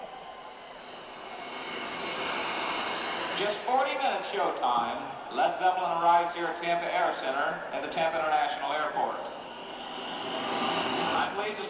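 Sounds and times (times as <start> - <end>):
jet aircraft engine roaring at airport: 0.0 - 5.2, 9.1 - 11.6
speech: 3.4 - 9.4, 11.4 - 11.6.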